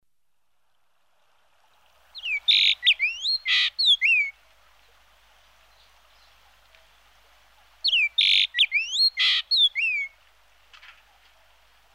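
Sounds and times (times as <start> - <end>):
ochre-rumped bunting Emberiza yessoensis singing: 2.1 - 4.4, 7.8 - 10.2.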